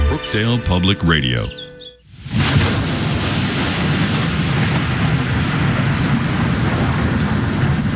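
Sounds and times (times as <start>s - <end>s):
speech: 0.1s - 1.6s
heavy rain pouring down: 2.1s - 7.9s.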